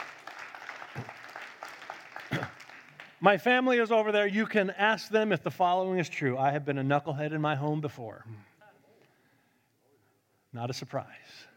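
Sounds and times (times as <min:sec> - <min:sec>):
cheers: 0:00.0 - 0:02.8
room full of people clapping: 0:00.0 - 0:03.6
speech: 0:03.2 - 0:08.5, 0:10.5 - 0:11.5.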